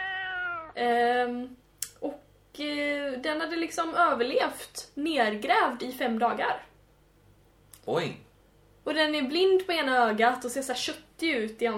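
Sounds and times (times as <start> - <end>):
kitten meowing: 0.0 - 0.8
speech: 0.8 - 6.7, 7.9 - 8.2, 8.8 - 11.7.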